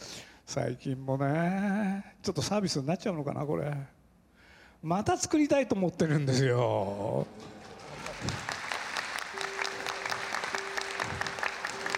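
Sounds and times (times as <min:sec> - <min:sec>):
speech: 0:00.5 - 0:04.0, 0:04.8 - 0:07.6
audience crowd applauding: 0:07.2 - 0:11.9.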